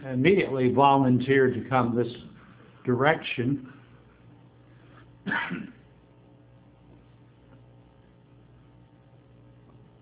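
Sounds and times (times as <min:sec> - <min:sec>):
speech: 0:00.0 - 0:03.8
quiet low hum: 0:00.0 - 0:10.0
person coughing: 0:05.2 - 0:05.9.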